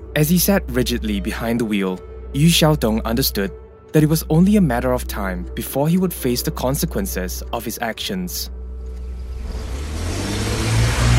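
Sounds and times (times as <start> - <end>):
speech: 0.2 - 8.6
car accelerating down a road: 8.8 - 11.1.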